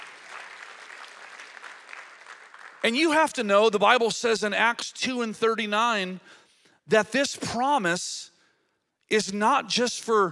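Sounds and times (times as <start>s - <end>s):
audience applause: 0.0s - 2.9s
speech: 2.8s - 8.3s, 9.1s - 10.3s.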